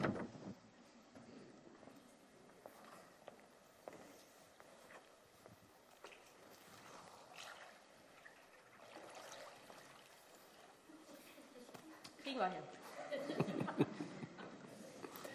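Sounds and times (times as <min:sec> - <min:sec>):
water splashing as person wades into a baptism pool: 0:02.6 - 0:11.6
laughter: 0:12.8 - 0:15.3.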